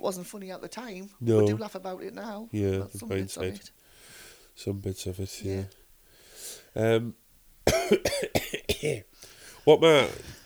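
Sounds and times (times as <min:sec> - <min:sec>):
speech: 0:00.0 - 0:03.8, 0:04.6 - 0:05.8, 0:06.8 - 0:10.4
harsh coughing: 0:07.7 - 0:09.1.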